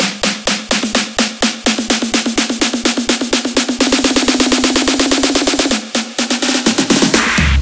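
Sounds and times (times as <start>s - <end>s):
snare drum roll in G minor: 0.0s - 7.5s.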